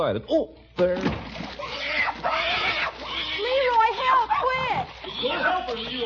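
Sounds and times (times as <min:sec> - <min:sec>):
speech: 0:00.0 - 0:02.4
pig squealing: 0:01.4 - 0:06.0.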